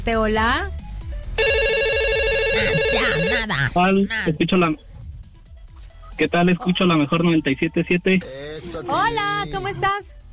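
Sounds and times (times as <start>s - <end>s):
speech: 0.0s - 0.8s, 2.6s - 4.9s, 6.2s - 10.2s
telephone ringing with an electronic ringtone for an incoming call: 1.4s - 3.8s.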